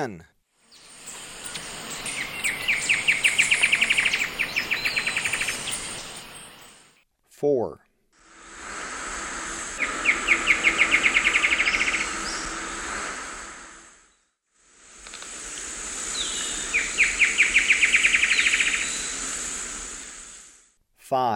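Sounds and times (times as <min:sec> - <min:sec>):
speech: 0:00.0 - 0:00.3, 0:07.4 - 0:07.8, 0:21.1 - 0:21.3
background hiss: 0:00.0 - 0:07.0, 0:08.2 - 0:20.8
Dugand's antwren trilling: 0:00.6 - 0:06.9, 0:09.0 - 0:13.7, 0:15.3 - 0:20.4.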